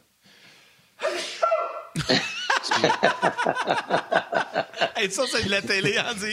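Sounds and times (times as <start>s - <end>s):
forceful sneeze: 1.0s - 1.9s
laughter: 2.0s - 6.3s
speech: 2.0s - 6.3s.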